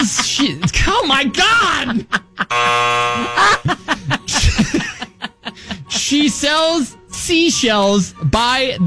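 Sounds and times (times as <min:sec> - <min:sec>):
speech: 0:00.0 - 0:03.7, 0:06.4 - 0:08.8
laughter: 0:00.0 - 0:06.2
harsh flat game show buzzer: 0:02.5 - 0:03.7.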